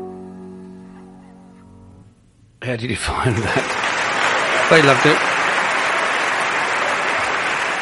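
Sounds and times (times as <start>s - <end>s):
speech: 2.7s - 3.8s, 4.7s - 5.3s
audience applause: 3.2s - 7.8s.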